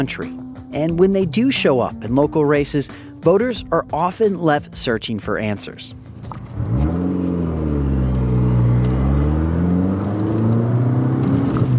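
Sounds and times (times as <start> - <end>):
speech: 0.0 - 6.8
highway road noise: 5.8 - 11.7
car engine drone on a highway: 5.9 - 11.7.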